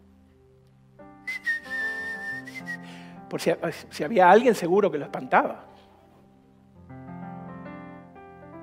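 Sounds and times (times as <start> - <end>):
soft sustained musical backdrop: 0.0 - 8.6
person whistling a clear high wavering tune: 1.2 - 3.2
speech: 3.3 - 5.7.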